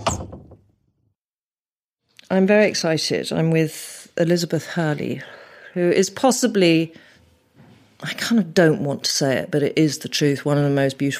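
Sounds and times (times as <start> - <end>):
wooden wardrobe door swinging open: 0.0 - 0.7
speech: 2.3 - 7.1, 8.0 - 11.1.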